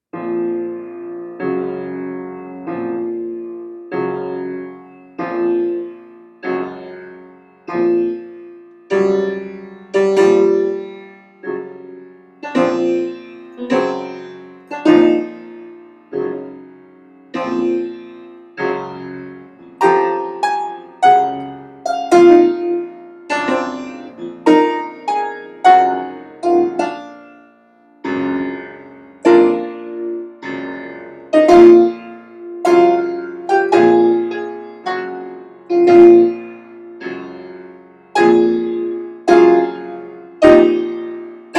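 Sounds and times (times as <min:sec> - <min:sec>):
improvised piano funeral march in B flat and C minor: 0:00.1 - 0:41.5.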